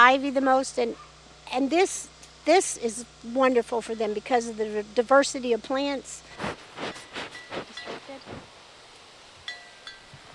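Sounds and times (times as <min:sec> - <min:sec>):
speech: 0:00.1 - 0:07.0
goat rubbing against a tree scratching itself: 0:06.3 - 0:08.5.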